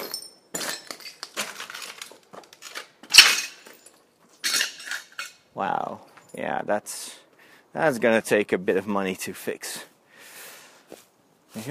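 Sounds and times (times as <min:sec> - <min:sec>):
broken glass left by vandals crunching underfoot: 0:00.0 - 0:05.4
speech: 0:05.6 - 0:09.7.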